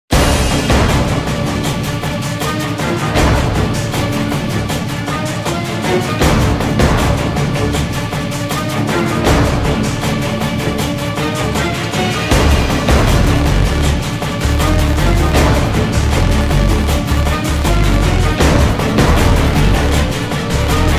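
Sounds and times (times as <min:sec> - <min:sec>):
battle sounds: 0:00.1 - 0:20.9.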